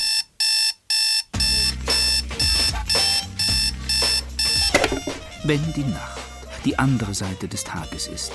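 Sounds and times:
alarm clock electronic beeps: 0.0 - 5.0
speech: 5.5 - 8.3.

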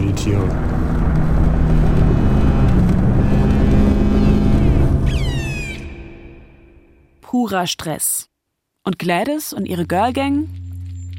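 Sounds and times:
motorboat engines droning on the water: 0.0 - 6.9
rising whine: 0.0 - 7.2, 9.7 - 11.1
speech: 0.2 - 0.7, 7.4 - 10.6.

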